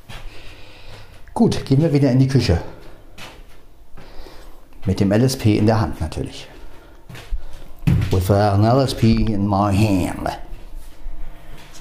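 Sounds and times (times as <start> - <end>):
speech: 1.4 - 2.8, 4.9 - 6.5, 8.2 - 10.4
bathroom door swinging shut: 7.8 - 8.7.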